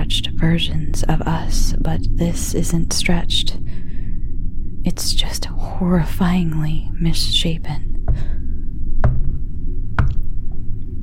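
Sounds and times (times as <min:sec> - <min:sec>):
low steady rumble: 0:00.0 - 0:11.0
speech: 0:00.1 - 0:03.7, 0:04.8 - 0:08.3
sharp solid knocking on a door: 0:09.0 - 0:09.4, 0:10.0 - 0:10.2.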